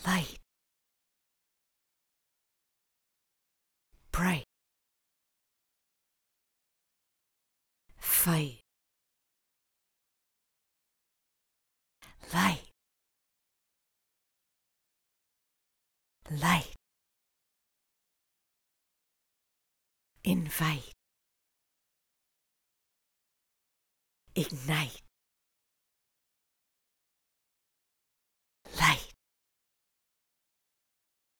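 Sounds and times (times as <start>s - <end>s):
vocal stems: 0.0s - 0.4s, 4.2s - 4.5s, 8.0s - 8.6s, 12.1s - 12.7s, 16.3s - 16.8s, 20.2s - 21.0s, 24.4s - 25.1s, 28.7s - 29.2s.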